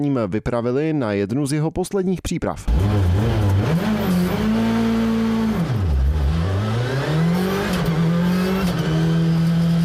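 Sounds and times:
speech: 0.0 - 3.4
rally car engine revving during a test drive: 2.7 - 9.8.

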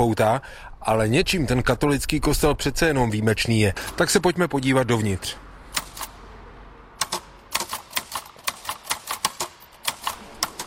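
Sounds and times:
speech: 0.0 - 5.4
manual typewriter clacking inside a Catholic church in Gelsenkirchen Germany: 7.0 - 10.6.

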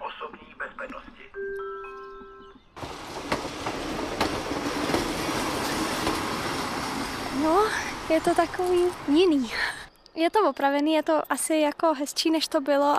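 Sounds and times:
train carriages rumbling and rattling arriving at station: 2.5 - 9.9
speech: 8.1 - 12.9.

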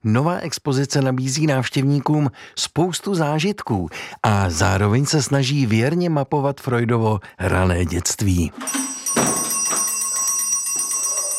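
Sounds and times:
speech: 0.0 - 9.4
small bell ringing with a bright shimmering tone: 8.6 - 11.3.

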